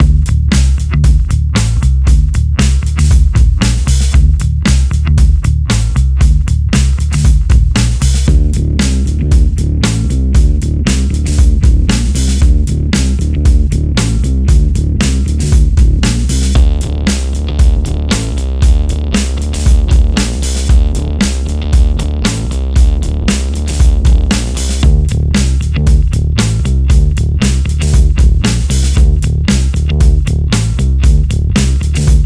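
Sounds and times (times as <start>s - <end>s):
bass guitar through bass amplifier: 0.0s - 32.2s.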